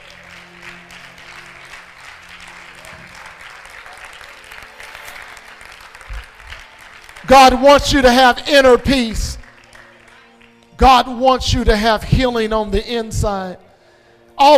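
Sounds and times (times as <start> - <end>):
audience clapping hands in a large room: 0.0 - 10.8
speech: 7.3 - 9.3, 10.8 - 13.6, 14.4 - 14.5.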